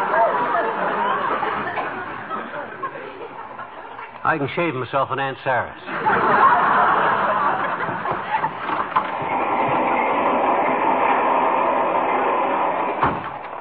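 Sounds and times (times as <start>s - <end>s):
laughter: 0.0s - 4.2s, 5.8s - 9.4s
speech: 4.3s - 6.6s
fast-moving passenger train rumbling on rails: 6.8s - 13.6s
sharp knock: 13.0s - 13.6s.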